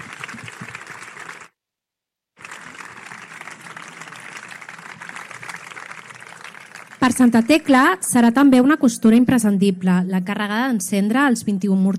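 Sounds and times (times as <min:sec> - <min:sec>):
crowd in Sitges applauding: 0:00.0 - 0:01.6, 0:02.4 - 0:08.1
speech: 0:07.1 - 0:11.9.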